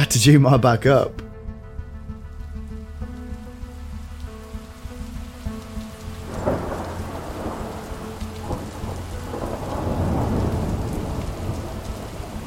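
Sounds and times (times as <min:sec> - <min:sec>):
speech: 0:00.1 - 0:01.2
steady heavy rain in a thunderstorm: 0:03.2 - 0:12.4
loud crack of thunder rumbling: 0:06.3 - 0:12.4.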